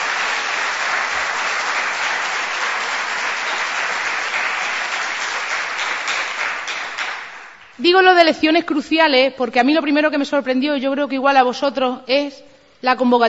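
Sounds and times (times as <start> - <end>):
audience applauding candidates standing in the elections: 0.0 - 7.8
speech: 7.8 - 13.2.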